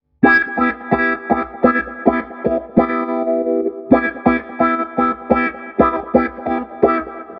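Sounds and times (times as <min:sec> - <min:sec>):
wah-wah effect: 0:00.2 - 0:07.3.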